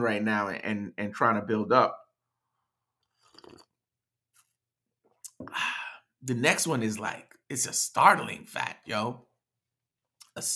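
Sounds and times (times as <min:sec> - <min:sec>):
speech: 0:00.0 - 0:02.0, 0:05.4 - 0:09.3, 0:10.4 - 0:10.5
person sipping coffee with noisy slurps: 0:02.9 - 0:04.6.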